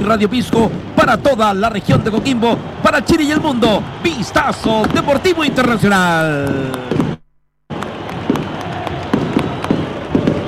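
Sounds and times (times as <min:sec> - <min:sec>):
speech: 0:00.0 - 0:07.1
fireworks bursting outside a stadium: 0:06.4 - 0:10.4.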